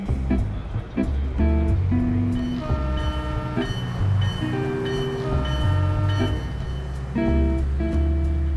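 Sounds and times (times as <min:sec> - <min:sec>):
train from San Francisco to New York pulling away from the station: 0:00.0 - 0:08.5
shifting horn-like tones: 0:02.4 - 0:07.6.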